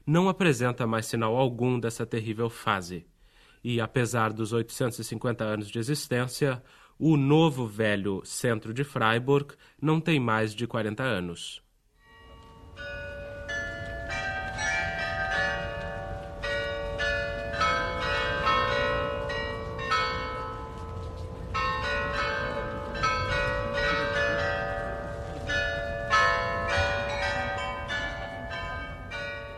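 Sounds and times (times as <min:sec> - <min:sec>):
speech: 0:00.1 - 0:11.6
carillon bells of the new town hall in Freiburg ringing a melody: 0:12.0 - 0:20.8, 0:21.5 - 0:29.5.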